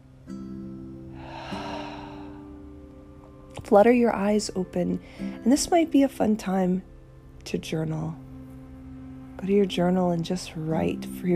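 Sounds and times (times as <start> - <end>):
steady low humming drone: 0.0 - 11.3
deep breath in through the nose and out through the mouth: 1.1 - 2.7
speech: 3.6 - 8.2, 9.4 - 11.3.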